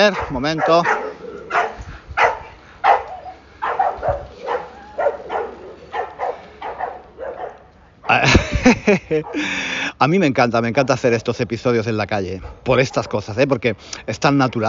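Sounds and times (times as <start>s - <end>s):
speech: 0.0s - 1.0s, 9.0s - 14.6s
dogs barking on the street: 0.0s - 8.3s, 9.0s - 9.6s, 12.3s - 13.5s, 14.2s - 14.6s
bicycles passing: 0.0s - 9.9s
low outdoor street rumble: 0.0s - 14.6s
laughter: 8.1s - 9.8s.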